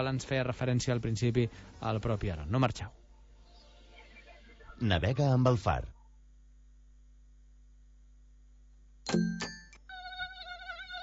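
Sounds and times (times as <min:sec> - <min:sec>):
speech: 0:00.0 - 0:03.0, 0:04.8 - 0:06.0, 0:09.1 - 0:09.5
tiger mosquito buzzing: 0:09.9 - 0:11.0.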